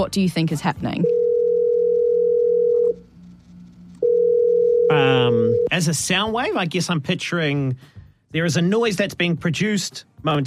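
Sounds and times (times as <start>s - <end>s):
speech: 0.0s - 1.2s, 4.9s - 10.4s
telephone dial tone: 1.0s - 3.0s, 4.0s - 5.7s.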